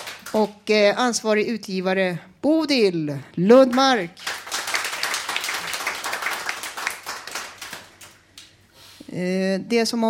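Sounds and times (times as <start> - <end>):
small group applauding: 0.0 - 0.6, 3.7 - 8.5
speech: 0.3 - 4.3, 9.2 - 10.0.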